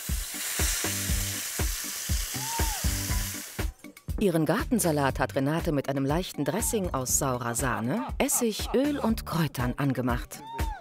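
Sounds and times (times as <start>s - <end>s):
flour-dusted fish fillets sizzling in a hot pan: 0.0s - 3.8s
speech: 4.2s - 10.6s.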